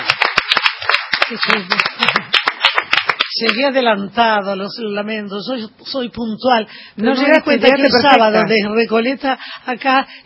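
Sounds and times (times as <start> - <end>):
audience applauding: 0.0 - 3.5
speech: 1.3 - 2.2, 3.4 - 10.2.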